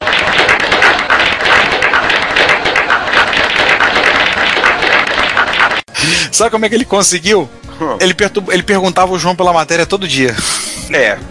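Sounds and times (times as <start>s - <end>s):
small group applauding: 0.0s - 5.9s
speech: 6.4s - 11.2s.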